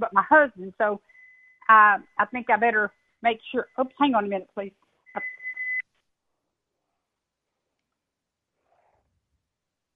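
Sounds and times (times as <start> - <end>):
speech: 0.0 - 5.4
kitchen timer beeping: 5.1 - 5.8.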